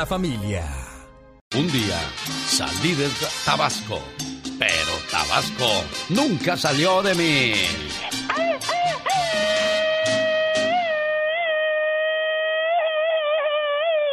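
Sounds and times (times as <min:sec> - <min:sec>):
speech: 0:00.0 - 0:00.8, 0:01.5 - 0:08.1
loud high-pitched scream: 0:08.3 - 0:14.1.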